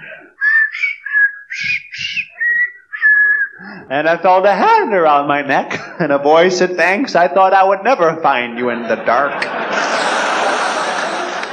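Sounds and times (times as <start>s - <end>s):
person whistling a cheerful little melody: 0.4s - 3.7s
speech: 3.9s - 9.9s
laughter: 8.6s - 11.5s.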